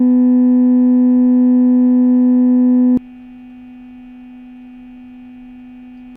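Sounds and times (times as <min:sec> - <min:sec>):
250 Hz structure-borne and airborne tone: 0:00.0 - 0:03.0.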